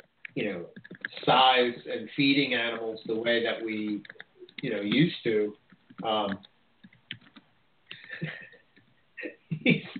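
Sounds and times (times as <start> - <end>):
typing on a computer keyboard: 0.2 - 1.2, 3.9 - 8.0
speech: 0.4 - 6.5, 8.2 - 8.4, 9.6 - 9.9.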